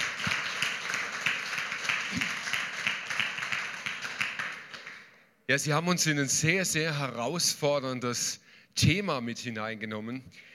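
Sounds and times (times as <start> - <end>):
audience applause: 0.0 - 5.0
speech: 5.5 - 10.5.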